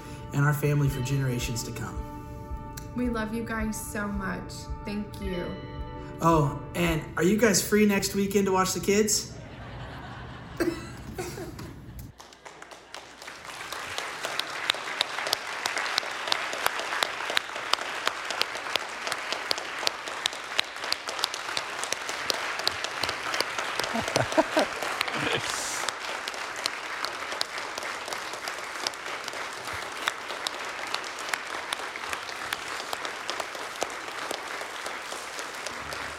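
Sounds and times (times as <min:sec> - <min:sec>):
speech: 0:00.3 - 0:02.2, 0:03.0 - 0:09.4
laughter: 0:09.3 - 0:11.9, 0:23.6 - 0:25.9
large crowd applause during standing ovation: 0:11.6 - 0:36.1.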